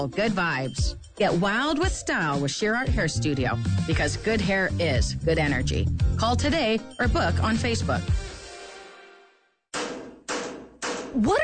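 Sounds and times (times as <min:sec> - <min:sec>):
speech: 0:00.0 - 0:08.3, 0:11.2 - 0:11.4
hammer banging on an air conditioner: 0:09.8 - 0:11.4.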